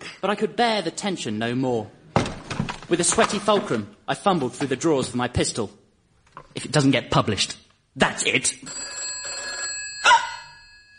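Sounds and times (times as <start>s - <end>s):
speech: 0.2s - 2.0s, 2.9s - 5.8s, 6.6s - 9.0s
telephone ringing with an electronic trill: 8.6s - 10.9s.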